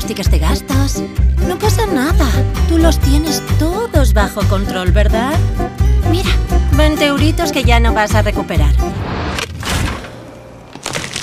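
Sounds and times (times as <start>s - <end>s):
speech: 0.1s - 9.4s
hard chocolate coating of an ice cream tub cracking: 10.7s - 11.2s.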